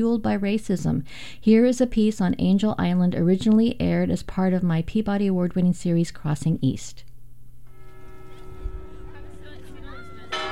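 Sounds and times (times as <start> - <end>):
speech: 0.0 - 7.1
fog bell clanging at Angel Island Immigration Station in San Francisco Bay: 7.7 - 10.5
crowd of children chattering exiting a ferry: 8.1 - 10.5.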